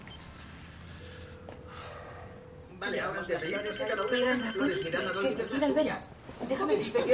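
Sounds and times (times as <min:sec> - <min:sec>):
voices talking: 0:02.8 - 0:07.1
mobile phone melodic ringtone: 0:02.9 - 0:05.8.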